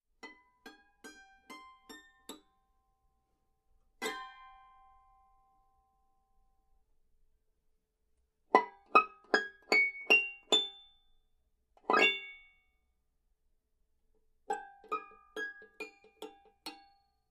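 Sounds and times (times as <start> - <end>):
banjo: 0.2 - 2.7, 3.9 - 5.4, 8.5 - 10.9, 11.8 - 12.5, 14.4 - 17.2.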